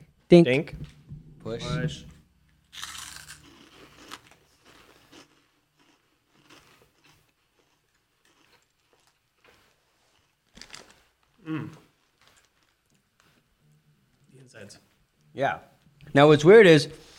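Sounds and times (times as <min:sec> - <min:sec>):
speech: 0:00.3 - 0:02.1, 0:11.4 - 0:11.8, 0:14.6 - 0:14.8, 0:15.4 - 0:17.1
crunching and chewing chips: 0:02.7 - 0:13.4.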